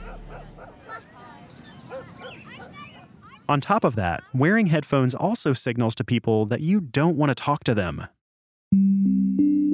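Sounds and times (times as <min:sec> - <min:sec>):
dog barking and yipping: 0:00.0 - 0:03.2
speech: 0:03.5 - 0:09.6.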